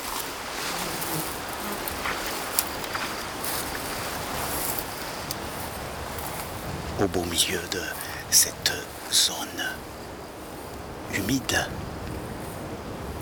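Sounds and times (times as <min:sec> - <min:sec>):
strong gusts of wind buffeting the microphone: 0:00.0 - 0:13.2
speech: 0:07.0 - 0:09.8, 0:11.1 - 0:11.8.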